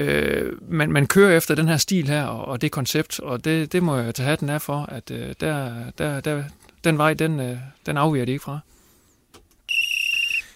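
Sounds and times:
speech: 0:00.0 - 0:08.8
referee whistle blast: 0:09.7 - 0:10.5.

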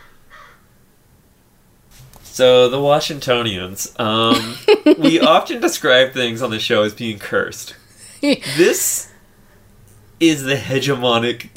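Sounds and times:
crow cawing: 0:00.0 - 0:00.7
steady hiss: 0:00.0 - 0:11.5
speech: 0:02.4 - 0:09.1, 0:10.2 - 0:11.5
laughter: 0:04.1 - 0:05.8, 0:08.0 - 0:09.0.

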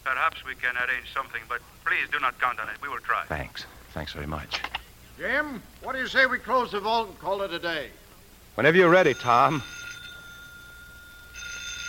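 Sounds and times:
speech: 0:00.1 - 0:08.0, 0:08.6 - 0:09.8
telephone ringing with electronic trill: 0:08.7 - 0:11.8.

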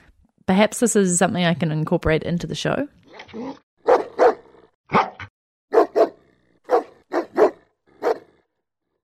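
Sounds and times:
speech: 0:00.5 - 0:03.6
dog barking: 0:03.8 - 0:08.4.

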